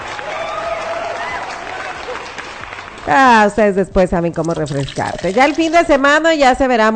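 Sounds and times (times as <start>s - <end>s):
faint voices or cheers: 0.0s - 2.3s
crowd clapping: 0.0s - 3.5s
speech: 3.1s - 6.9s.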